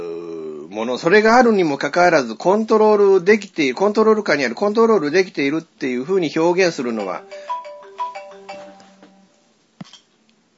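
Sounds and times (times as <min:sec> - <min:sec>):
speech: 0:00.8 - 0:07.5
phone ringtone of clear electronic notes for an incoming call: 0:07.0 - 0:09.5.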